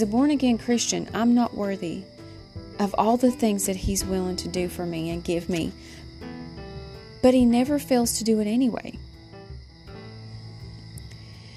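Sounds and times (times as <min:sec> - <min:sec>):
speech: 0:00.0 - 0:02.1, 0:02.8 - 0:06.0, 0:07.2 - 0:09.1
crickets and night insects chirping: 0:00.0 - 0:11.5.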